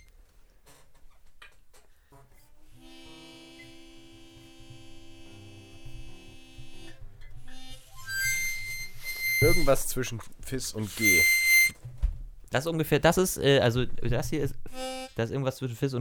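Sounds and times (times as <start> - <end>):
smoke detector electronic beep: 8.1 - 9.8, 11.0 - 11.7
speech: 9.6 - 11.4, 12.5 - 14.5, 15.2 - 16.0.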